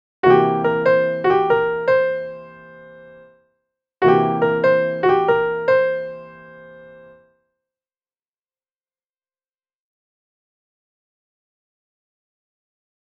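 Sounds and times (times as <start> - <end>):
blues notes in E: 0.2 - 3.2, 4.0 - 7.0.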